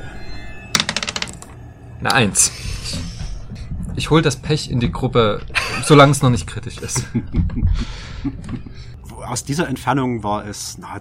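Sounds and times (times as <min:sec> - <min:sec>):
white die rolled across a hard surface: 0:00.8 - 0:01.5
speech: 0:02.0 - 0:03.1, 0:04.0 - 0:10.9
laughter: 0:05.5 - 0:08.9.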